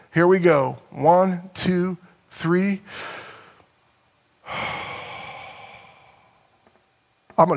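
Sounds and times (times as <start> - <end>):
speech: 0.1 - 3.2, 7.4 - 7.5
person taking a deep breath in a guided breathing exercise: 2.9 - 3.6, 4.4 - 6.8.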